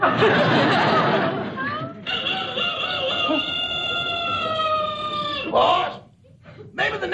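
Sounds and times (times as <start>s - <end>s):
laughter: 0.0s - 5.6s
rooster crowing: 2.0s - 5.5s
flock of chickens clucking and squawking: 2.0s - 5.7s.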